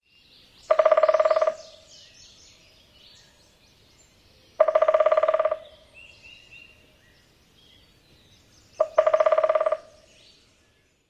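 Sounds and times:
Red-bellied Woodpecker drumming: 0.7s - 1.8s, 4.6s - 5.9s, 8.8s - 10.1s.

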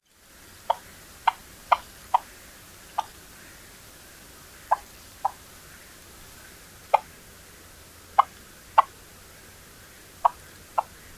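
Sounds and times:
whip-poor-will soft clucks: 0.6s - 3.6s, 4.6s - 7.1s, 8.2s - 9.0s, 10.0s - 11.1s.

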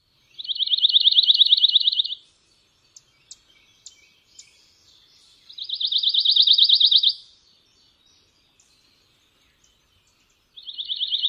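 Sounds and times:
pine warbler singing: 0.0s - 11.2s.

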